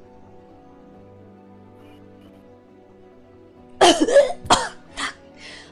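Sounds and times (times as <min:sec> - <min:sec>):
person imitating coughing up blood: 0:03.8 - 0:05.1
speech: 0:03.9 - 0:04.4.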